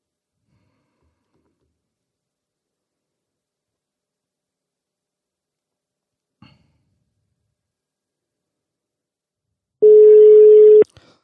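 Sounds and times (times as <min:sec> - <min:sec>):
telephone ringback tone while calling: 0:09.8 - 0:10.8.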